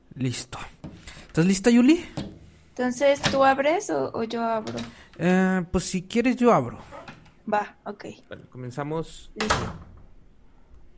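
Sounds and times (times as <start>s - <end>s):
speech: 0.2s - 0.7s, 1.3s - 6.9s, 7.5s - 9.9s
door shutting with a thud: 9.4s - 10.1s.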